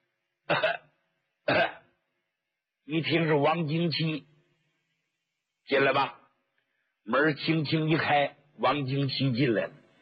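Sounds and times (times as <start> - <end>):
person coughing outside: 0.5 - 0.9, 1.5 - 1.9
speech: 2.9 - 4.3, 5.7 - 6.2, 7.1 - 9.8.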